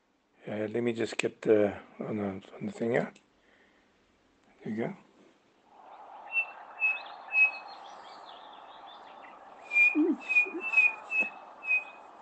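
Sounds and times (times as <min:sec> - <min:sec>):
speech: 0:00.5 - 0:03.2, 0:04.6 - 0:05.0
Chinspot Batis whistled calls: 0:05.8 - 0:12.2.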